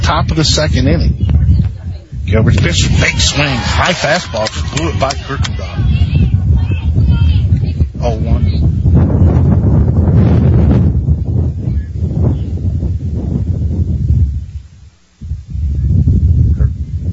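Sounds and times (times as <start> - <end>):
strong wind buffeting the microphone: 0.0 - 17.1
speech: 0.1 - 1.3, 2.3 - 6.2.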